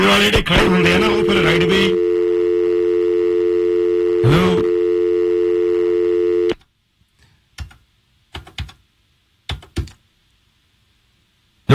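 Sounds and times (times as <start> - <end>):
speech: 0.1 - 2.1
phone tone after a dropped call: 0.6 - 6.6.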